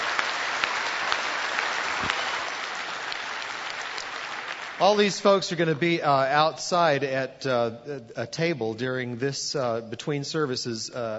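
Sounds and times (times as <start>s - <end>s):
large crowd applause: 0.0s - 5.8s
speech: 4.8s - 11.1s.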